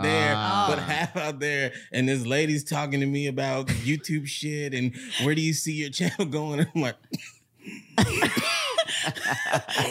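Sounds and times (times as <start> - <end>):
speech: 0.7 - 9.8
voice imitating a choking cough: 7.0 - 8.8
laughter: 8.0 - 9.8.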